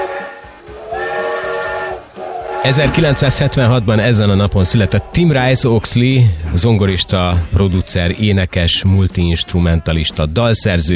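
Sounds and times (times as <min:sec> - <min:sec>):
steam locomotive whistle blowing: 0:00.0 - 0:05.2
steam locomotive hissing steam: 0:00.0 - 0:06.8
speech: 0:02.6 - 0:10.9.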